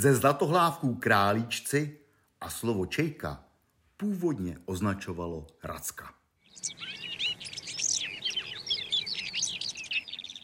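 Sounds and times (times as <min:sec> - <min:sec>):
speech: 0:00.0 - 0:07.0
red-backed shrike twittering: 0:06.4 - 0:10.4.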